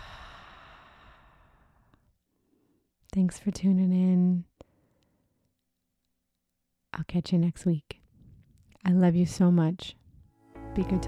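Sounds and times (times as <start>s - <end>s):
open-mouth exhale after a breathing exercise: 0.0s - 2.0s
speech: 3.2s - 4.5s, 7.0s - 8.0s, 8.8s - 10.0s, 10.8s - 11.0s.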